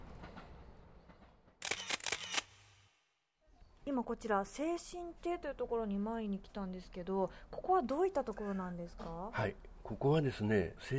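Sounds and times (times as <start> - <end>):
camera shutter clicks taking a photo: 1.6 - 3.0
speech: 3.9 - 10.9.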